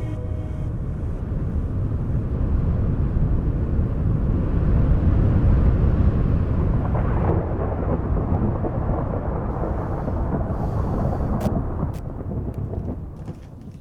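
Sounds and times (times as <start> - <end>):
deep rolling thunder in a thunderstorm: 0.2 - 13.7.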